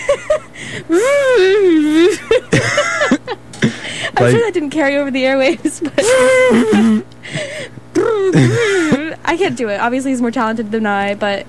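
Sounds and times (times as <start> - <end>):
laughter: 0.0 - 4.4, 5.5 - 9.7
person imitating a strained tug-of-war grunt: 3.7 - 4.4, 8.0 - 9.0
short clipped vocal bursts: 4.2 - 4.4, 8.0 - 9.1
speech: 4.2 - 7.1, 9.3 - 11.4.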